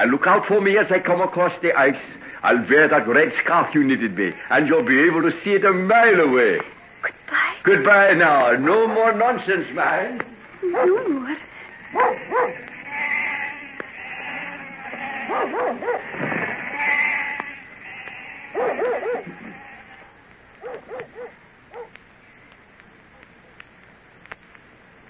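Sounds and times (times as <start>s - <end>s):
speech: 0.0s - 12.7s
flock of sheep bleating as they're driven off: 11.1s - 20.2s.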